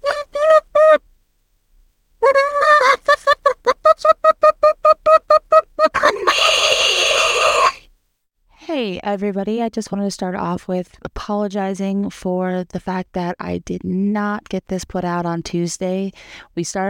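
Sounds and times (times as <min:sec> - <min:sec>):
chicken long raspy squawk: 0:00.0 - 0:01.0, 0:02.2 - 0:07.8
speech: 0:09.1 - 0:16.8.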